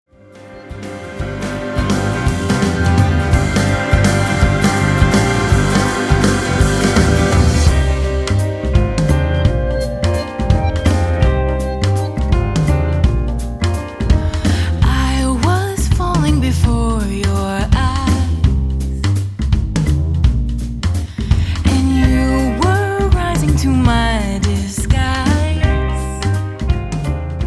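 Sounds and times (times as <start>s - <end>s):
drums: 0.1s - 27.4s
organ: 0.2s - 14.2s
percussion: 0.4s - 27.4s.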